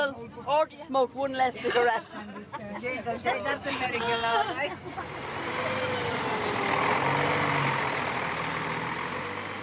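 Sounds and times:
speech: 0.1 - 6.1
road and air noise hiss: 3.1 - 9.6
large bus engine droning: 3.2 - 9.6.

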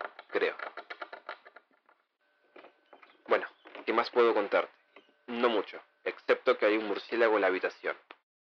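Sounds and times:
rats and mice scratching inside wooden wall paneling of a house: 0.0 - 5.3
speech: 0.4 - 0.8, 3.9 - 8.1.

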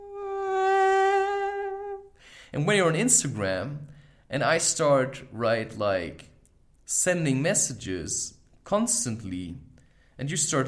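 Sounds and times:
voice imitating mosquito with nasal high-pitched buzzing whine: 0.0 - 2.1
speech: 2.5 - 6.3, 6.9 - 10.6.

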